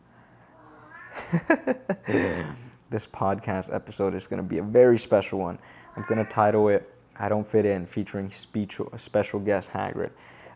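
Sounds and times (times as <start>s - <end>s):
cat meowing: 0.6s - 1.3s, 5.8s - 6.5s
speech: 1.2s - 10.5s.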